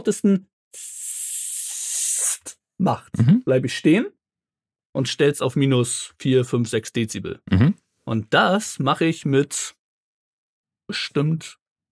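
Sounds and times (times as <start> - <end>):
speech: 0.0 - 1.1, 2.4 - 4.2, 5.0 - 9.8, 10.9 - 11.6
voice imitating a sibilant hiss: 0.8 - 2.6.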